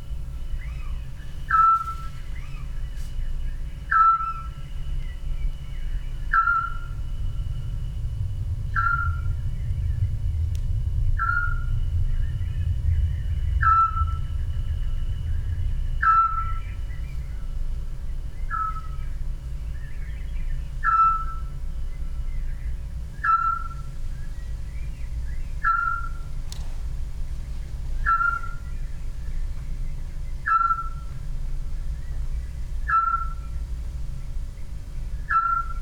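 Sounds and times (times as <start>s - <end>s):
low continuous rumble: 0.0s - 35.8s
family of scops owls calling in whistled hoots: 0.5s - 3.2s, 3.9s - 4.6s, 6.2s - 7.3s, 8.7s - 9.5s, 11.2s - 11.8s, 13.5s - 15.1s, 15.9s - 17.6s, 18.5s - 19.2s, 20.8s - 21.6s, 23.2s - 24.0s, 25.6s - 26.4s, 28.0s - 28.7s, 30.4s - 31.2s, 32.8s - 33.6s, 35.2s - 35.8s.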